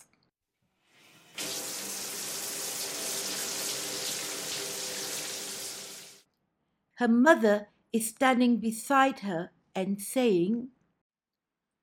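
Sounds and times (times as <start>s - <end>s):
water gushing from a kitchen tap: 1.3s - 6.2s
speech: 7.0s - 10.8s.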